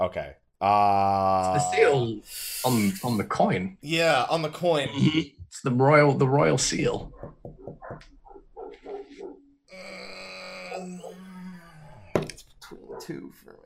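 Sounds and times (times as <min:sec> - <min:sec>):
speech: 0:00.0 - 0:08.1, 0:12.7 - 0:13.6
dog barking sharply: 0:07.1 - 0:09.5, 0:12.7 - 0:13.6.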